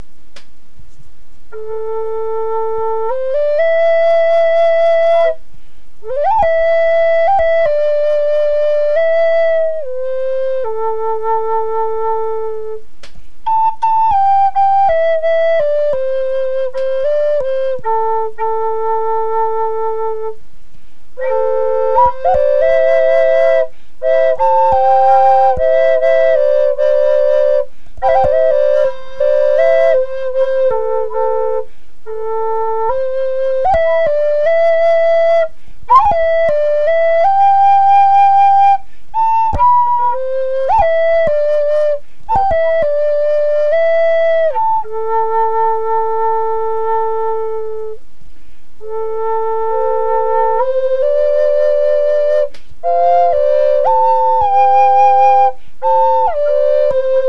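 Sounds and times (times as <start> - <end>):
drone flute of butternut and red cedar: 1.5 - 5.4, 6.0 - 12.8, 13.4 - 20.5, 21.2 - 48.0, 48.8 - 57.2.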